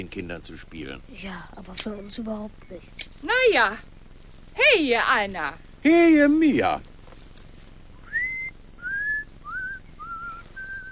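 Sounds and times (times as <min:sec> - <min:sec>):
speech: 0:00.0 - 0:03.9, 0:04.6 - 0:06.9
man whistling a casual tune to himself: 0:08.0 - 0:10.9.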